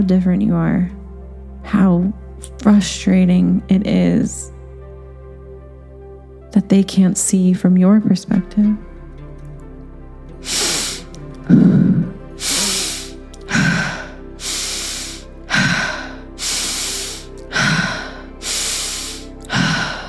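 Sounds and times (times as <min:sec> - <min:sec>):
speech: 0:00.0 - 0:01.0, 0:01.6 - 0:04.6, 0:06.5 - 0:08.9, 0:10.4 - 0:10.6, 0:11.5 - 0:12.6
deep rhythmic breathwork breathing: 0:10.3 - 0:20.0.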